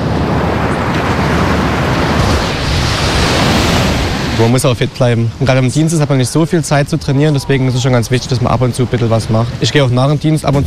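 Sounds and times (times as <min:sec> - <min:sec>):
ocean surf breaking on a beach: 0:00.0 - 0:10.6
speech: 0:04.4 - 0:10.6.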